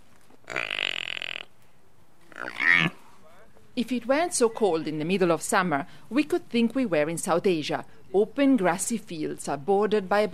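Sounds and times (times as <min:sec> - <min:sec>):
four-day-old water buffalo calf giving grunting calls: 0:00.4 - 0:01.5, 0:02.3 - 0:03.0
speech: 0:03.8 - 0:10.3.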